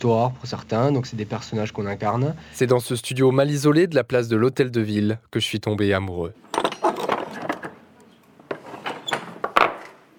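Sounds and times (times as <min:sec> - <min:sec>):
speech: 0:00.0 - 0:06.5
old medieval castle-style wooden door opening: 0:06.5 - 0:10.1.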